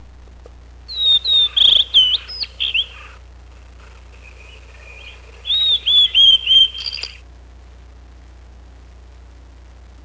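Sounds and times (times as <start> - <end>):
blue-and-white flycatcher singing: 0.9 - 7.2.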